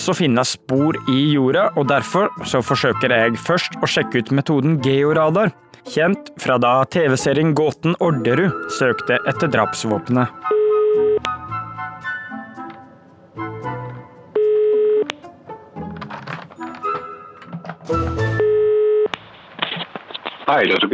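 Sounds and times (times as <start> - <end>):
speech: 0.0 - 11.3, 20.5 - 20.9
telephone ringing tone through a receiver before call connects: 10.4 - 11.4, 14.3 - 15.2, 16.6 - 19.2.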